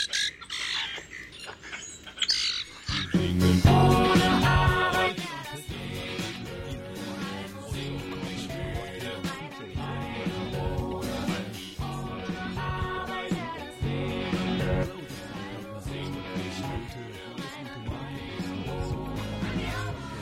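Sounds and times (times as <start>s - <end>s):
common grackle calls: 0.0s - 3.6s
music with sustained tones and deep bass: 3.0s - 17.0s, 17.9s - 20.2s.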